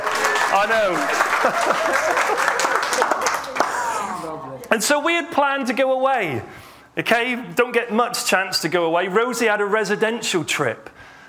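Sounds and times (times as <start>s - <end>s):
audience applause: 0.0s - 4.2s
crowd voices and cheers: 0.0s - 4.3s
laughter: 0.0s - 4.3s
speech: 0.6s - 3.1s, 4.7s - 11.0s.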